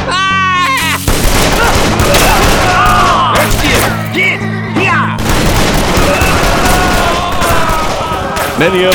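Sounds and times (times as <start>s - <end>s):
wailing cries and shouts: 0.0s - 8.9s
volley of gunfire from ranch defenders in an ambush: 1.1s - 3.9s, 5.2s - 8.9s.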